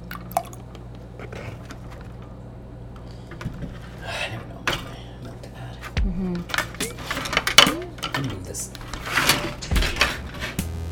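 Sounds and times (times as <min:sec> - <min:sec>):
juice dripping in quiet splashes: 0:00.0 - 0:01.0
steady low hum: 0:00.0 - 0:10.6.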